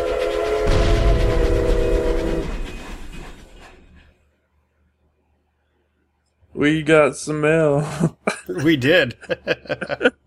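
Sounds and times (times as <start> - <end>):
train horn blast: 0.0 - 3.0
clattering train rumbling on rails: 0.0 - 4.4
speech: 6.6 - 10.2
laughter: 7.8 - 10.2.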